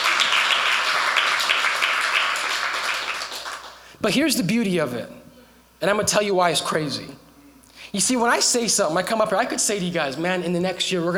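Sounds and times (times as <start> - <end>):
church audience clapping hands: 0.0 - 4.0
speech: 4.0 - 5.2, 5.8 - 7.2, 7.9 - 11.1.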